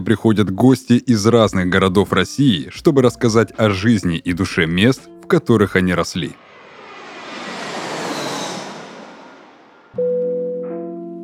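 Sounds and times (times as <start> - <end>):
speech: 0.0 - 6.5
airplane engine roar during landing approach: 6.0 - 10.0.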